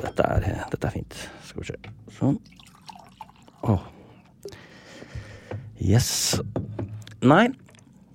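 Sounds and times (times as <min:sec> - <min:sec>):
speech: 0:00.0 - 0:02.6, 0:03.6 - 0:03.9, 0:05.8 - 0:06.6, 0:07.2 - 0:07.6
water pouring into a glass: 0:02.4 - 0:03.8.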